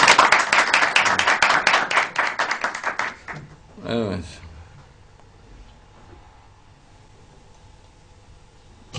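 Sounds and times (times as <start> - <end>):
crowd applauding with dense steady clapping: 0.0 - 3.4
speech: 3.9 - 4.4.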